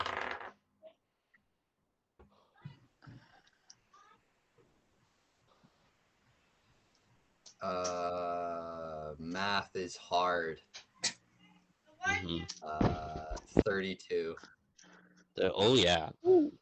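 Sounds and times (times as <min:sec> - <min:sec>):
dice rolling across a hard tabletop for a tabletop role-playing game check: 0:00.0 - 0:00.6
speech: 0:07.6 - 0:08.4, 0:09.2 - 0:10.9, 0:12.2 - 0:14.6, 0:15.4 - 0:16.6.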